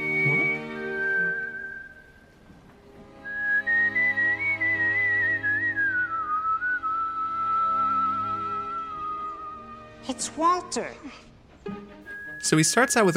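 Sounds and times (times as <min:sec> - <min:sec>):
clear bright whistled melody: 0:00.0 - 0:02.4, 0:03.1 - 0:10.0, 0:12.0 - 0:13.1
sustained instrumental backing: 0:00.0 - 0:13.1
speech: 0:10.1 - 0:11.3, 0:12.4 - 0:13.1.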